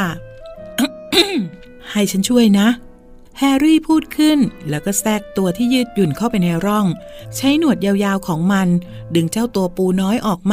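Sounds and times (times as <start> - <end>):
person shyly clearing their throat: 0.8 - 1.6
speech: 1.2 - 2.8, 3.4 - 10.5.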